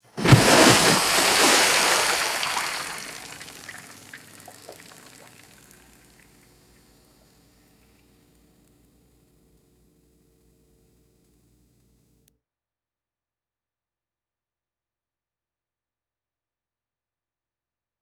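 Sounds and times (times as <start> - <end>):
heavy rock splashing into deep water: 0.1 - 6.3.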